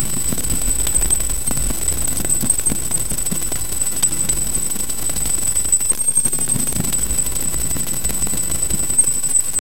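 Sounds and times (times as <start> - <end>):
high-pitched string screeching: 0.0 - 9.6.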